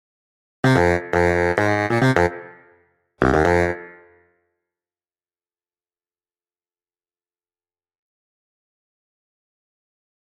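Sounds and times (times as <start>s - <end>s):
baritone saxophone: 0.6s - 2.6s, 3.2s - 4.0s.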